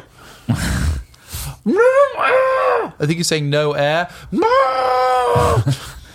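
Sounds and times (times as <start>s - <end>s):
speech: 0.5s - 0.7s, 1.6s - 5.9s
muffled scream of panic: 1.7s - 3.0s, 4.4s - 5.6s.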